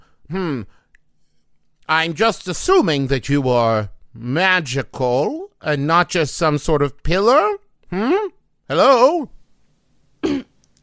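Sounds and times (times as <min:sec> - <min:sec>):
speech: 0:00.3 - 0:00.8, 0:01.9 - 0:09.4
short throat-clearing cough: 0:10.2 - 0:10.8.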